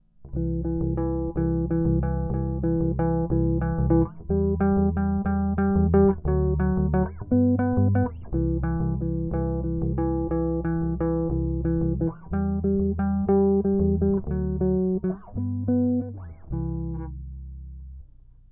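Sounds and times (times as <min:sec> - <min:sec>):
bass chords through a preamp: 0:00.0 - 0:18.5.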